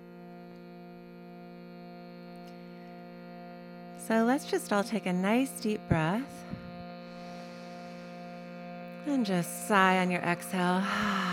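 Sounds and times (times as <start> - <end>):
shruti box drone: 0.0 - 11.3
speech: 4.0 - 6.6, 9.0 - 11.3.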